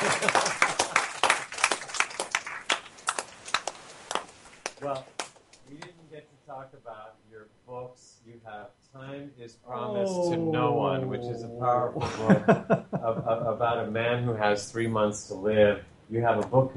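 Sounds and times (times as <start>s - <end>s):
laughter: 0.0s - 1.1s, 10.0s - 13.9s
few people clapping: 0.0s - 6.0s
speech: 4.8s - 16.7s.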